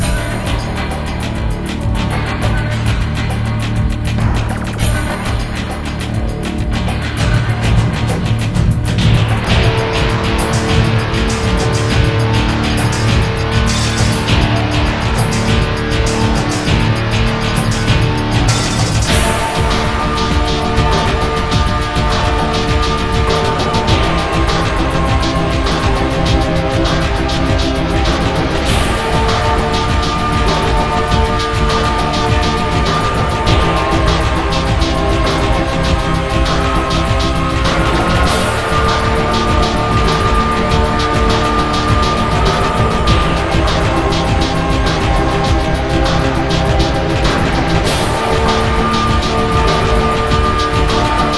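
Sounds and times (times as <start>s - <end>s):
electro music: 0.0s - 51.3s.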